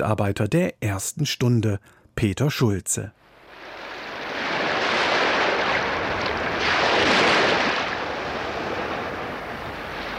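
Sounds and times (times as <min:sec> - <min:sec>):
speech: 0:00.0 - 0:03.2
wind: 0:00.0 - 0:10.1
sea surf breaking on an island shore: 0:03.4 - 0:10.1.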